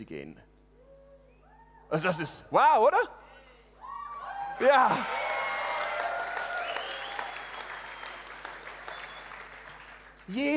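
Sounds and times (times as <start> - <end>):
speech: 0.0 - 0.5, 1.9 - 3.2, 4.6 - 5.3, 10.3 - 10.5
room full of people applauding in a restrained way: 4.5 - 10.5.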